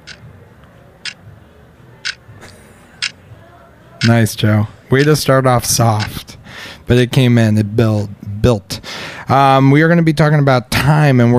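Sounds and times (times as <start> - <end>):
clock ticking: 0.0 - 0.3, 4.0 - 6.2
speech: 4.0 - 6.3, 6.9 - 11.3.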